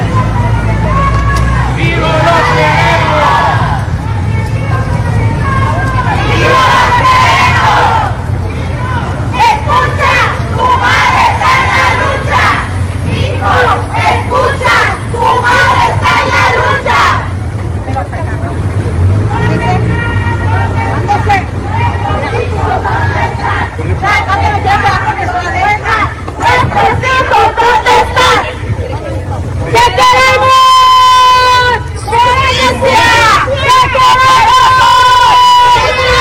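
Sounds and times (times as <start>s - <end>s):
crowd of marchers shouting and chanting during a street march: 0.0s - 36.1s.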